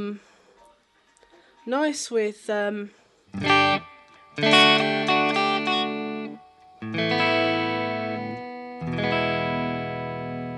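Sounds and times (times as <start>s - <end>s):
speech: 0.0s - 0.3s, 1.6s - 5.0s
clean Stratocaster electric guitar strumming chords with light reverb: 3.3s - 10.5s.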